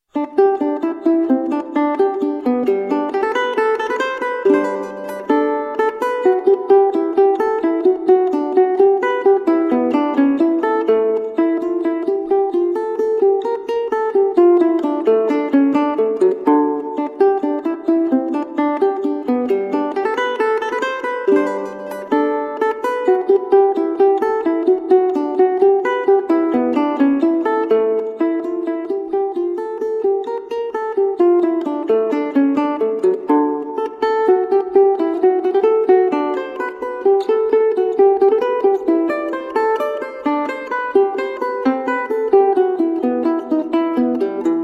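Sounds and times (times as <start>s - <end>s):
solo mandola playing a baroque gigue: 0.0s - 44.6s.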